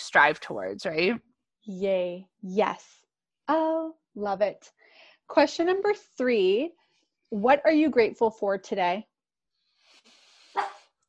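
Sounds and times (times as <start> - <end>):
speech: 0.1 - 9.1
pet dog barking: 10.6 - 10.8.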